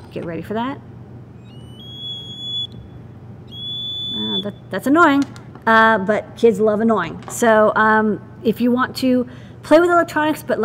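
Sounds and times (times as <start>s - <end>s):
speech: 0.1s - 0.9s, 4.4s - 10.6s
piezo buzzer plugged into conductive play dough in a kids' electronics kit: 1.4s - 4.6s.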